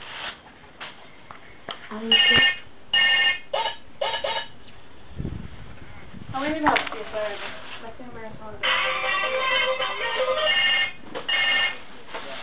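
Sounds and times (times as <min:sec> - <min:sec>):
phone ringtone electronic melody for an incoming call: 0:02.1 - 0:04.5, 0:08.6 - 0:11.8.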